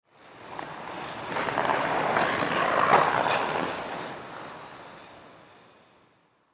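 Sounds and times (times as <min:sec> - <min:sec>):
ice skate passing by with a slow scrape on a rink: 0:01.0 - 0:04.2.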